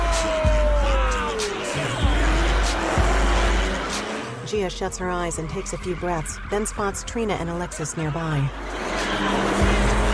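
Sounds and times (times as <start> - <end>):
dense noisy crowd: 0.0 - 4.4, 7.6 - 10.1
car engine roaring and whining while spinning in circles: 0.0 - 10.1
tires screeching: 0.0 - 10.1
speech: 4.6 - 9.4.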